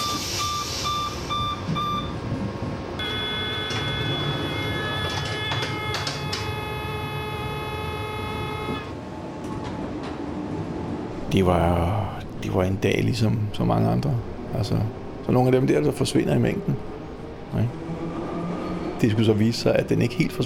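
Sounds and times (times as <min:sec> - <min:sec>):
Copenhagen S-train rumbling on line B: 0:00.0 - 0:20.4
electronic door-closing warning tones: 0:03.0 - 0:08.9
speech: 0:11.4 - 0:16.9, 0:17.5 - 0:17.9, 0:19.0 - 0:20.4.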